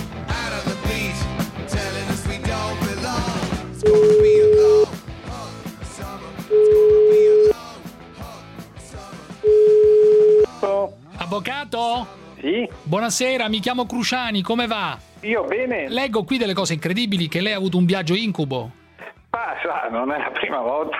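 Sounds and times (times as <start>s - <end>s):
loud music: 0.0s - 20.9s
telephone ringback tone: 3.8s - 4.9s, 6.5s - 7.6s, 9.4s - 10.5s
speech: 11.4s - 18.8s, 19.6s - 20.9s.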